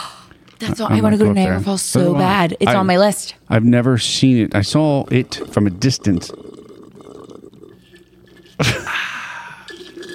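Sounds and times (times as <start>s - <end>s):
person sipping soda: 0.0s - 0.6s, 5.0s - 10.1s
speech: 0.6s - 6.5s, 8.6s - 8.8s.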